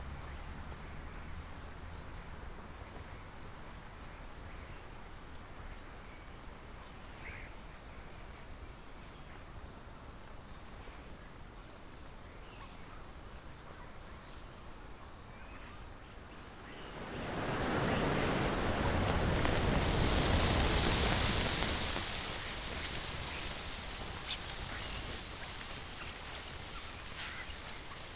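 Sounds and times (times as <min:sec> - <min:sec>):
starlings calling at dusk: 0:16.4 - 0:28.1
rushing wing-roar of a landing starling flock: 0:16.5 - 0:28.1.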